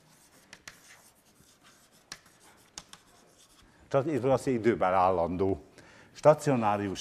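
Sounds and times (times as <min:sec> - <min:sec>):
writing scratching during a lecture: 0:00.0 - 0:03.7
speech: 0:03.9 - 0:07.0.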